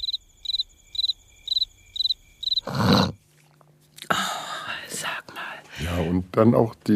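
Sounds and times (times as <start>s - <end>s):
crickets chirping: 0.0s - 3.2s
speech: 5.8s - 6.9s.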